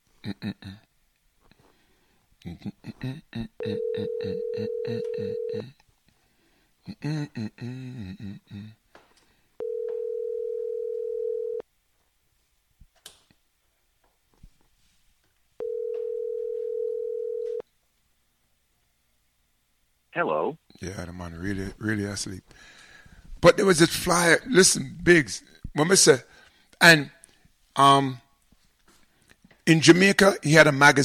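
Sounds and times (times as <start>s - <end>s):
speech: 0.2s - 0.9s, 2.4s - 5.8s, 6.8s - 8.8s, 20.2s - 22.8s, 23.4s - 27.2s, 27.8s - 28.2s, 29.7s - 31.0s
ringback tone on a telephone line: 3.6s - 5.7s, 9.6s - 11.6s, 15.6s - 17.6s.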